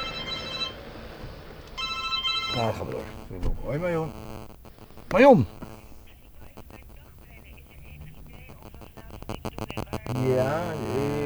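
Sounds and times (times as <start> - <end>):
faint hum: 0.0 - 11.2
telephone ringing with warbling tones: 0.0 - 11.2
speech: 2.6 - 4.4, 5.1 - 5.6.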